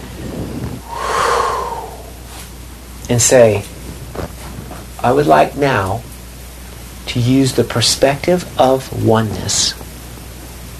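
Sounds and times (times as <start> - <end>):
person taking a long deep breath in: 0.6 - 2.5
speech: 3.1 - 3.8, 5.0 - 6.1, 7.1 - 9.8.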